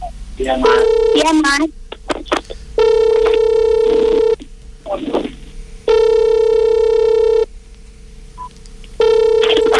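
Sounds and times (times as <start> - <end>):
speech: 0.4 - 1.8
telephone ringback tone: 0.7 - 1.4, 2.8 - 4.4, 5.9 - 7.5, 9.0 - 9.7.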